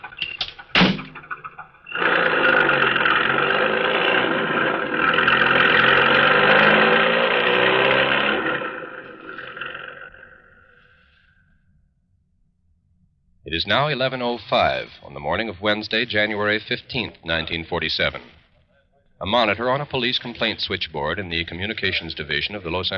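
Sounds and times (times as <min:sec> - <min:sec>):
car engine roaring and revving as the car speeds away: 0:01.9 - 0:11.2
speech: 0:13.6 - 0:18.4, 0:19.2 - 0:22.9.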